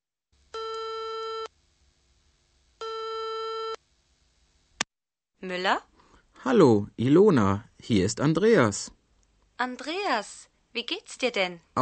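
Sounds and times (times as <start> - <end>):
telephone ringback tone: 0.6 - 1.5, 2.8 - 3.8
speech: 5.4 - 9.0, 9.6 - 11.8.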